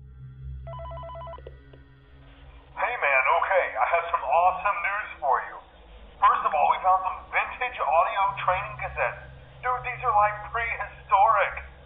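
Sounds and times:
low hum: 0.0s - 11.8s
telephone ringing with electronic warbling trill: 0.7s - 1.4s.

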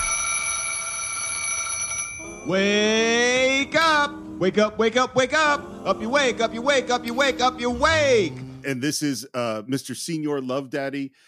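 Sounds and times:
alarm clock ringing: 0.0s - 4.1s
speech: 2.4s - 11.2s.

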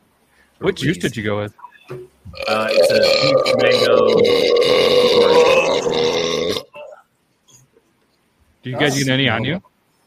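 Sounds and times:
speech: 0.6s - 6.4s, 8.6s - 9.7s
long loud throaty burp: 2.4s - 7.0s.

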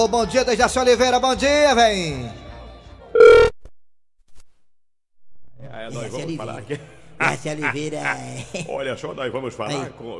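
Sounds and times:
speech: 0.0s - 2.4s, 5.9s - 10.1s
telephone ringing in a woman's house: 3.2s - 3.6s
laughter: 6.5s - 9.0s.

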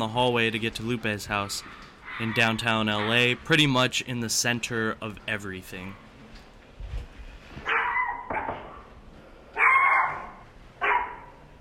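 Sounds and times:
speech: 0.0s - 6.0s
dog barking and yipping: 2.0s - 3.4s, 7.6s - 8.9s, 9.6s - 11.5s
high-pitched dog yaps: 7.6s - 8.9s, 9.6s - 11.3s.

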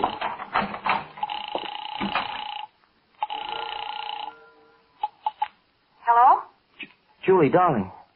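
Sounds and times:
telephone ringing: 0.0s - 5.5s
speech: 7.3s - 8.0s.

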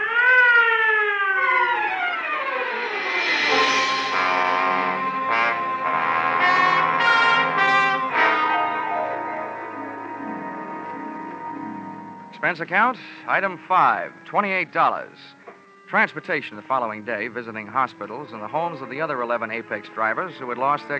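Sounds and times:
ambulance siren wailing: 0.0s - 20.9s
speech: 12.5s - 20.9s.

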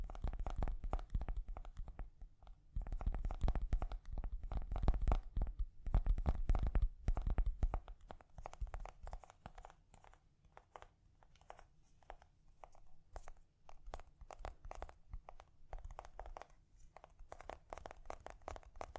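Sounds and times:
gentle quick tapping with crinkly texture: 0.0s - 18.9s.

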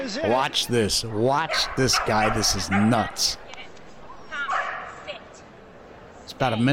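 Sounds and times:
murmur of voices: 0.0s - 6.7s
speech: 0.1s - 3.4s, 6.4s - 6.7s
border collie barking and yipping at an agility obstacle course: 1.5s - 3.3s.

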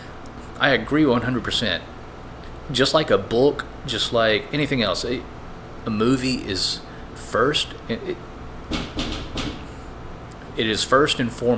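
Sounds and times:
speech: 0.6s - 2.0s, 2.7s - 8.8s, 10.6s - 11.5s
dull knocks on a bar door: 8.7s - 9.7s.

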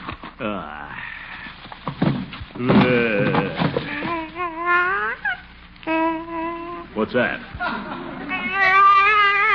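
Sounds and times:
speech: 0.4s - 1.1s, 2.6s - 3.0s, 7.0s - 7.9s
baby crying in a car: 3.8s - 6.9s, 8.2s - 9.5s.

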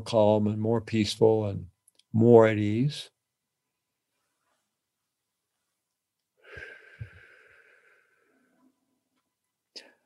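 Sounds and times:
speech: 0.0s - 3.2s
slow breath blown through a straw: 6.4s - 8.4s.

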